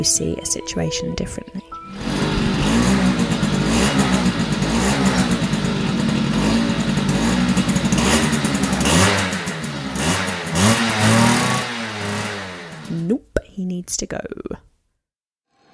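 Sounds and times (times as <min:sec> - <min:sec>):
speech: 0:00.0 - 0:02.2, 0:13.8 - 0:14.7
dirt bike engine revving while ridden in a field: 0:01.9 - 0:12.9.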